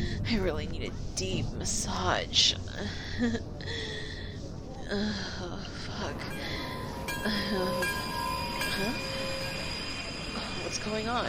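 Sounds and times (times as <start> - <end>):
steady rumble: 0.0 - 11.2
speech: 0.3 - 4.0, 4.9 - 9.3, 10.4 - 11.2
train wheels squealing as train stops: 6.1 - 11.2.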